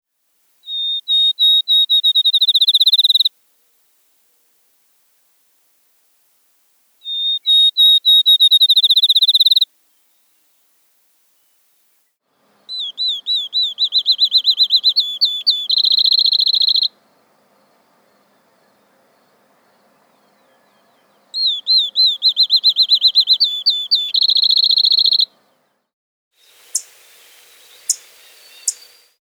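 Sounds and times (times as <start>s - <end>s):
Field Sparrow: 0.4s - 5.8s, 6.9s - 25.8s, 26.4s - 29.2s.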